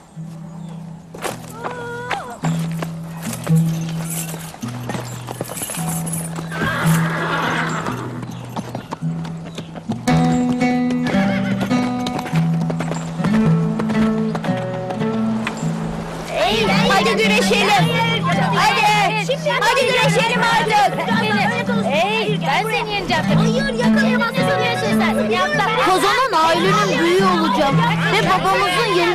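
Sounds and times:
horse hooves clip-clopping: 0:00.0 - 0:29.1
horse neighing and whinnying: 0:06.4 - 0:08.3, 0:11.0 - 0:11.8.

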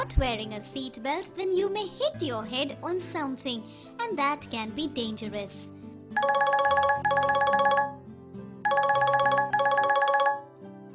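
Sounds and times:
speech: 0:00.0 - 0:07.3
mobile phone ringing with warbling electronic trills in a car: 0:06.2 - 0:08.0, 0:08.7 - 0:10.5.

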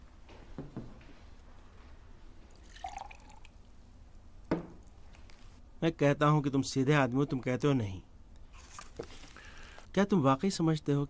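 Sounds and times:
water poured for drinking trickling: 0:02.5 - 0:03.6
speech: 0:05.8 - 0:08.1, 0:10.0 - 0:11.0.

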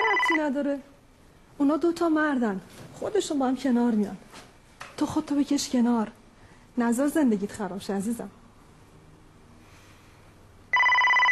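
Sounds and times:
telephone ringing with loud electronic tone: 0:00.0 - 0:00.5, 0:10.7 - 0:11.3
faint hum: 0:00.0 - 0:11.3
speech: 0:00.4 - 0:00.9, 0:01.6 - 0:04.3, 0:05.0 - 0:06.2, 0:06.8 - 0:08.4.

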